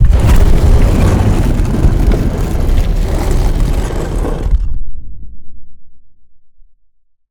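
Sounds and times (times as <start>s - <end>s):
big door opening: 0.0s - 4.7s.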